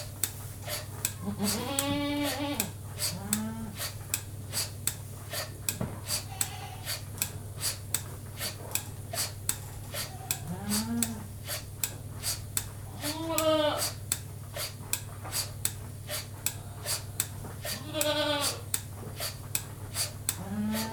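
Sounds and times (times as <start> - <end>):
constant low mechanical hum: 0.0 - 20.9
milking machine ticking: 0.0 - 20.9
speech: 1.2 - 3.2
goat bleating while being milked by machine: 1.2 - 3.6, 6.2 - 7.0, 10.0 - 11.0, 13.0 - 14.0, 17.6 - 18.6.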